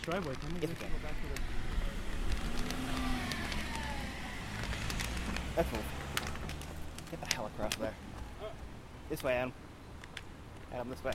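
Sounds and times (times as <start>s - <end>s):
speech: 0.0s - 1.6s, 5.6s - 6.0s, 7.1s - 8.2s, 9.1s - 9.6s, 10.7s - 11.1s
car driving past on a street: 0.8s - 7.1s.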